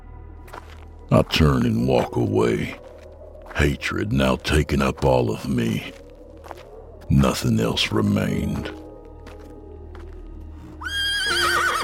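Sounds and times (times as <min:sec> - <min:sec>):
quiet low rumble: 0:00.0 - 0:10.8
speech: 0:01.1 - 0:02.8, 0:03.6 - 0:06.0, 0:07.1 - 0:08.8
horse whinnying: 0:10.8 - 0:11.8.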